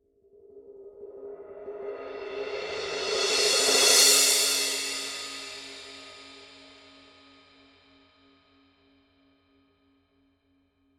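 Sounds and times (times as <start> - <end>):
16-inch Dark Energy crash cymbal roll: 2.3 - 6.2.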